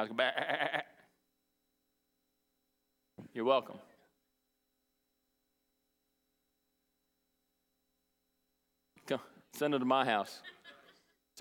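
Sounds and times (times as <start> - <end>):
speech: 0.0 - 0.9, 3.4 - 3.9, 9.1 - 10.8
person imitating a sheep bleating: 0.0 - 1.0
laughter: 10.3 - 11.2.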